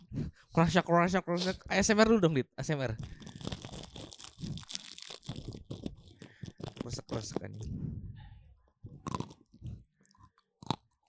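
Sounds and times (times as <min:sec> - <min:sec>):
speech: 0:00.6 - 0:03.2, 0:07.0 - 0:08.0
crisp keripik chips being chewed: 0:03.0 - 0:07.6, 0:09.0 - 0:11.0.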